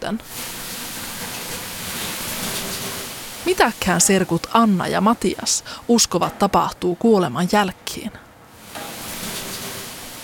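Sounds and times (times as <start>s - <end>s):
speech: 0.1s - 0.5s, 3.5s - 8.2s
water tossed onto hot sauna stones hissing and sizzling: 0.2s - 6.0s, 8.6s - 10.2s.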